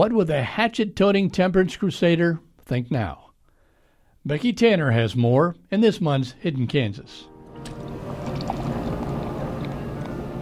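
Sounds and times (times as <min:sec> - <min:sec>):
speech: 0:00.0 - 0:03.2, 0:04.2 - 0:07.9
beer pouring and splashing into a frosty mug in a saloon: 0:07.5 - 0:10.4
faint low hum: 0:07.7 - 0:10.4.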